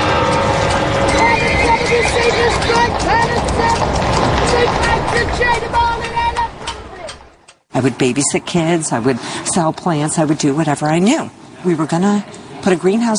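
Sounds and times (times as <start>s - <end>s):
horse neighing: 0.0s - 5.7s
horse hooves clip-clopping from horse-drawn wagons: 0.0s - 7.6s
dense busy street noise: 0.0s - 13.1s
speech: 7.8s - 13.1s.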